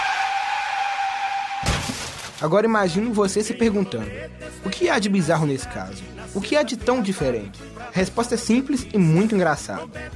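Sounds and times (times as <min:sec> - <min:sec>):
car tire screech: 0:00.0 - 0:01.7
car crashing into a restaurant: 0:01.6 - 0:02.4
speech: 0:02.4 - 0:10.1.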